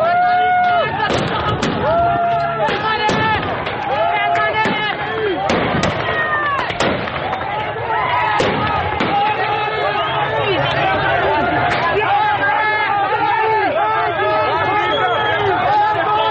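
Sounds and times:
loud agitated crowd shouting: 0.0 - 16.3
gunshot-like cracks: 4.6 - 7.5, 8.4 - 9.3.

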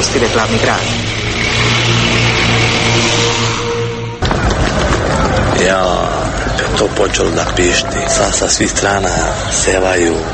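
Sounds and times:
armored personnel carriers rumbling past on a highway: 0.0 - 10.3
speech: 0.2 - 1.0, 5.6 - 10.3.

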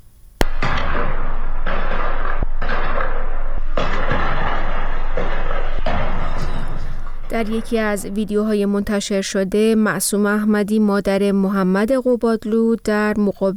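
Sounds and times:
gunfire cracks around a prison: 0.4 - 6.0
explosions around a prison: 0.4 - 7.3
speech: 7.3 - 13.5.

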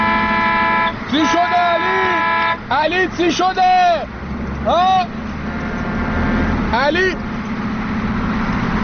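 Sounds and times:
short car horn honk: 0.0 - 2.8
steady low engine rumble inside a moving vehicle: 0.0 - 8.8
speech: 1.1 - 1.5, 2.8 - 5.2, 6.7 - 7.2.

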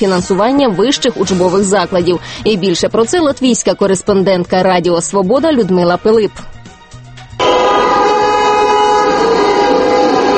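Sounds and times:
speech: 0.0 - 6.6
motorcycle horns blaring: 7.4 - 10.3.

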